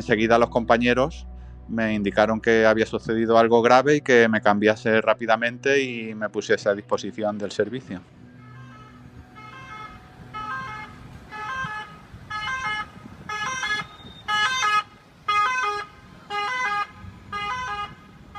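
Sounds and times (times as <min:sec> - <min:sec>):
speech: 0:00.0 - 0:08.2
low rumble of traffic: 0:00.0 - 0:18.3
ambulance siren blaring in two-tone bursts: 0:08.2 - 0:18.3.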